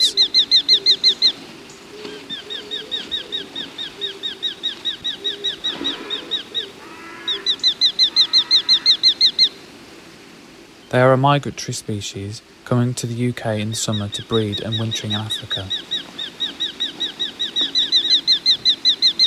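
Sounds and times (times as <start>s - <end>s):
hobby falcon giving sharp kew notes: 0.0s - 9.6s, 13.5s - 19.2s
faint noise: 0.0s - 19.2s
speech: 10.9s - 16.0s.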